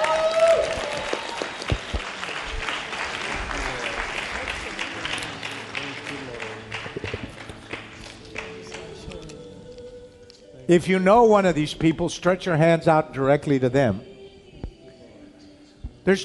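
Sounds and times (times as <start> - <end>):
congregation applauding: 0.0 - 9.1
speech: 10.7 - 14.1, 16.0 - 16.2.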